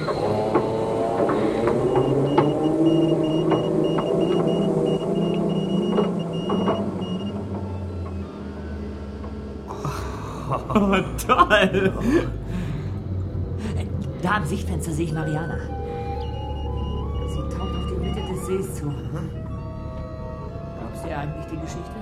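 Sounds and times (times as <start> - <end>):
clicks and knocks: 0.0 - 8.2
small submarine motor droning on a lake: 0.0 - 10.5, 12.0 - 22.0
laughter: 9.7 - 12.5
speech: 10.9 - 12.4, 14.3 - 15.7, 18.5 - 19.4, 21.2 - 22.0.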